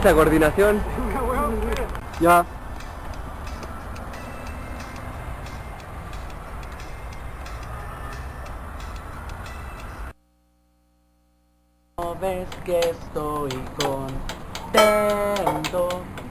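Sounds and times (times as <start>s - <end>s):
speech: 0.0s - 1.1s, 2.2s - 2.6s, 12.7s - 16.2s
train wheels and cars clicking and clacking: 1.1s - 10.1s, 12.2s - 16.2s
rail train rumbling past: 2.0s - 10.1s.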